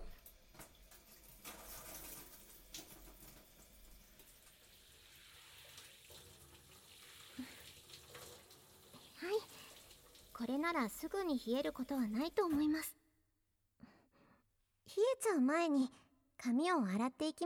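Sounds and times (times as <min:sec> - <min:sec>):
shower water running: 0:00.0 - 0:12.9
speech: 0:10.4 - 0:13.0, 0:15.2 - 0:17.4.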